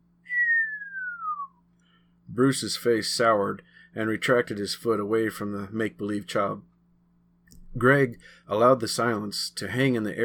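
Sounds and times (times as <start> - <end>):
faint low hum: 0.0 - 10.2
man whistling a falling cartoon whistle: 0.2 - 1.7
speech: 2.4 - 6.7, 7.7 - 10.2.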